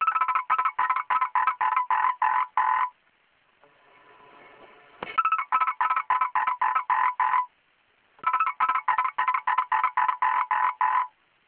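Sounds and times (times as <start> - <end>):
frog croaking: 0.0 - 3.0, 5.2 - 7.5, 8.2 - 11.2.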